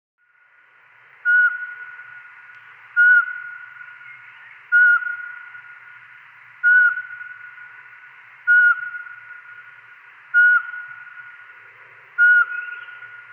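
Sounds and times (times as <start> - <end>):
Eurasian pygmy owl repeating a short pure whistle: 1.2 - 5.8, 6.6 - 11.5, 12.2 - 13.3.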